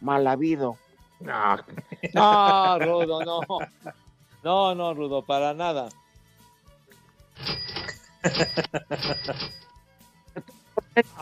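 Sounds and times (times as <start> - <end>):
speech: 0.0 - 6.0, 7.4 - 9.6, 10.4 - 11.2
laughter: 1.4 - 3.9, 8.2 - 9.4
cash register ringing: 7.4 - 9.6.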